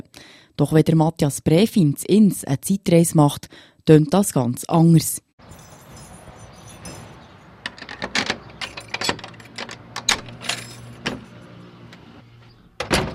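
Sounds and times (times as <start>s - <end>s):
speech: 0.6s - 5.6s
keys jangling at the front door of an old family house: 5.4s - 11.1s
front door lock clicking and clunking as it is unlocked: 7.6s - 12.1s, 12.8s - 13.1s.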